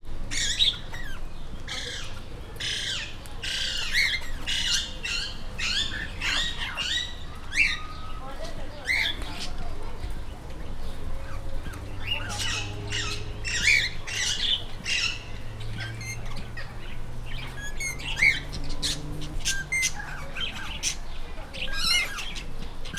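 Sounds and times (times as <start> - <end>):
four kinds of parrots at a zoo: 0.3 - 9.8, 10.8 - 22.9.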